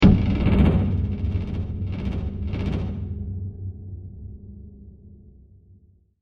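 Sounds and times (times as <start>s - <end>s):
heavy mangled drum stab: 0.0s - 3.4s.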